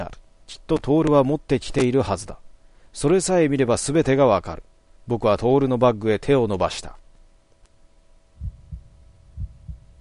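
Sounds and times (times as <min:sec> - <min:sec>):
speech: 0:00.0 - 0:07.0
faint steady hum: 0:00.0 - 0:09.9
pounding heartbeat sound effect: 0:08.4 - 0:09.9.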